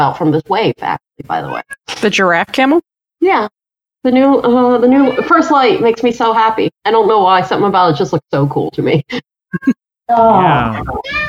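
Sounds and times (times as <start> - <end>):
speech: 0.0 - 11.2
cat meowing: 1.4 - 1.9, 4.9 - 5.6, 10.6 - 11.2.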